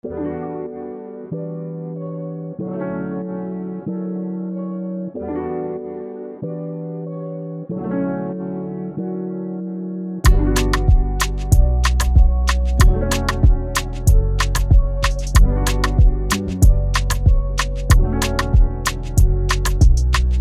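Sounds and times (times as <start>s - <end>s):
Afro melody loop in B minor at 94 BPM: 10.2s - 20.4s.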